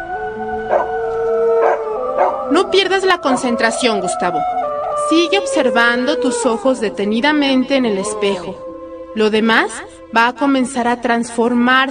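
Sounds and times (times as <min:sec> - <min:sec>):
two neighbours' dogs howling together: 0:00.0 - 0:07.0
speech: 0:02.5 - 0:08.6, 0:09.2 - 0:11.8.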